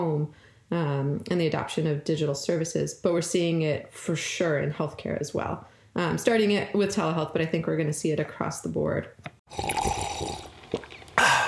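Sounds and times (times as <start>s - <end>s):
speech: 0.0s - 10.4s
person slurping a first sip of hot morning coffee: 9.5s - 11.4s
breathy exhale: 11.2s - 11.4s.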